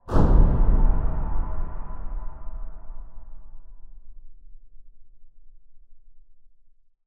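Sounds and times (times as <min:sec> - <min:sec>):
impact boom: 0:00.0 - 0:04.9.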